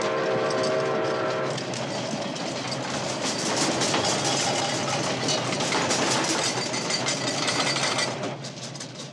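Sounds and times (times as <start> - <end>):
train horn blaring: 0.0 - 1.7
train rumbling past with wheels clattering on rails: 0.0 - 8.5.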